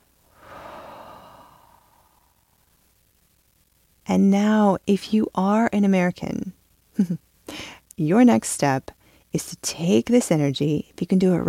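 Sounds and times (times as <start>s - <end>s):
slow deep breath in and out to finish a meditation: 0.3s - 2.6s
speech: 4.1s - 11.4s.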